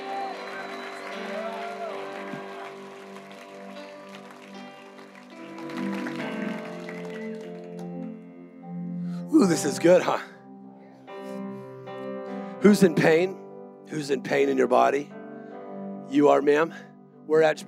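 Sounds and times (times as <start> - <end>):
church audience shouting to the Lord: 0.0 - 3.1
church audience clapping: 0.0 - 8.3
speech: 9.4 - 10.3, 12.6 - 15.2, 16.1 - 17.6.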